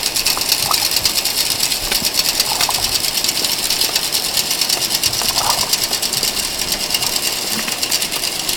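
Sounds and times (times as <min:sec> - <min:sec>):
ferries in Haro: 0:00.2 - 0:08.5.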